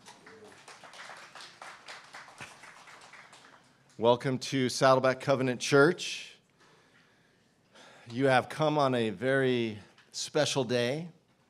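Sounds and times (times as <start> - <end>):
audience in a church applauding the worship team: 0.0 - 4.0
speech: 4.0 - 6.3, 8.1 - 11.2.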